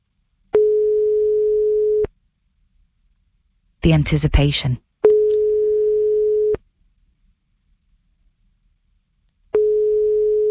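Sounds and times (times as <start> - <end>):
telephone line tone on an unanswered call: 0.6 - 2.1, 5.0 - 6.6, 9.6 - 10.4
speech: 3.9 - 4.9.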